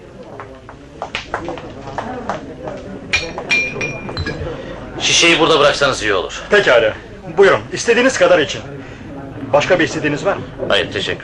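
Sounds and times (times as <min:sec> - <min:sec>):
people talking quietly: 0:00.0 - 0:11.2
wine glasses clinking: 0:03.1 - 0:04.8
speech: 0:05.1 - 0:08.8, 0:09.5 - 0:11.2.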